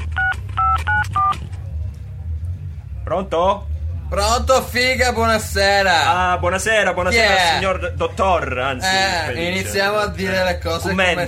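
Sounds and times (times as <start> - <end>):
low continuous hum: 0.0 - 11.2
touch-tone keypad beeps dialing a telephone number: 0.1 - 1.4
speech: 3.1 - 11.2.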